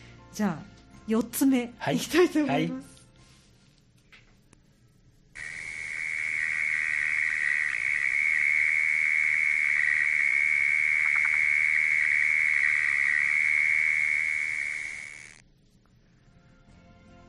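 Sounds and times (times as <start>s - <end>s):
speech: 0.4s - 2.9s
faint frog croak: 5.4s - 15.4s
mole cricket trilling: 5.4s - 15.4s.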